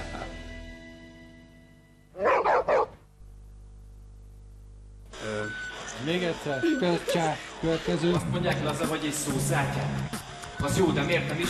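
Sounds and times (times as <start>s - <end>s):
dog barking: 2.2s - 3.0s
speech: 6.0s - 11.4s.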